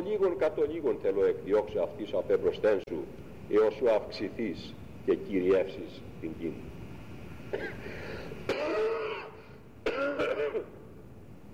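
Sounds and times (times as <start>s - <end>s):
speech: 0.0s - 6.8s, 7.5s - 8.3s
person clearing throat: 7.5s - 7.9s, 8.5s - 10.8s
harsh raspy coughing: 7.5s - 10.8s.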